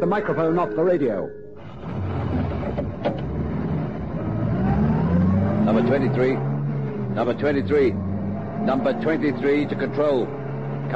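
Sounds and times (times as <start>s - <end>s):
speech: 0.0s - 1.4s, 3.0s - 3.3s, 5.7s - 6.5s, 7.2s - 8.0s, 8.6s - 10.9s
patrol car engine starting and revving: 1.6s - 10.9s.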